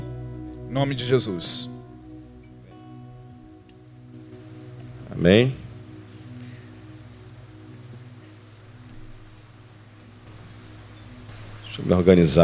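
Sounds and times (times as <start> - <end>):
speech: 0.7 - 1.8, 5.2 - 5.6, 11.8 - 12.4
heavy rain heard from indoors: 3.4 - 12.4.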